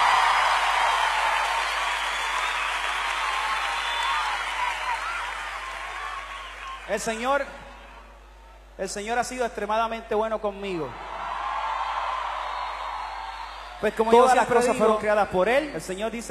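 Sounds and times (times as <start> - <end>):
audience applauding: 0.0 - 7.3, 11.0 - 15.0
speech: 6.9 - 7.6, 8.8 - 11.0, 13.8 - 16.2.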